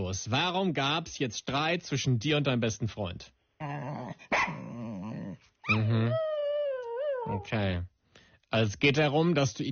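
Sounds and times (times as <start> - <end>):
speech: 0.0 - 4.7, 5.7 - 6.3, 7.2 - 7.9, 8.5 - 9.6
dog barking and growling: 3.6 - 7.5.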